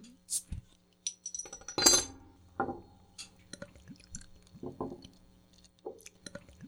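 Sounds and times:
sharp glass clinks: 0:01.0 - 0:02.8
American pale ale pouring into a glass: 0:02.5 - 0:06.6.

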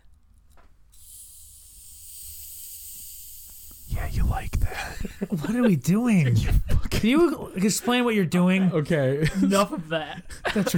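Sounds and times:
soda can popping open: 0:00.9 - 0:04.7
ginger ale fizzing: 0:00.9 - 0:05.3
speech: 0:04.1 - 0:10.7.

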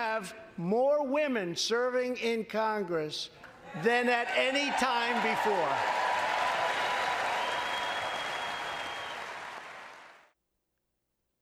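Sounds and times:
speech: 0:00.2 - 0:06.0
large crowd of women cheering and applauding: 0:03.8 - 0:10.3.

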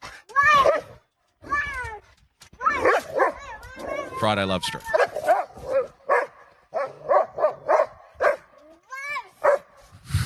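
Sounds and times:
dog barking excitedly while playing on a trampoline: 0:00.6 - 0:01.0, 0:02.8 - 0:03.5, 0:04.9 - 0:08.6, 0:09.4 - 0:09.8
dog yelping: 0:02.6 - 0:04.2, 0:04.8 - 0:08.5
speech: 0:04.2 - 0:05.0.

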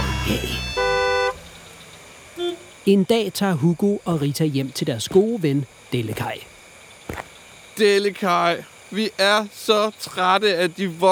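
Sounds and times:
car horn honking: 0:00.0 - 0:03.0
low hum of road traffic: 0:00.0 - 0:09.0
speech: 0:00.3 - 0:00.7, 0:02.9 - 0:06.5, 0:07.1 - 0:11.1.

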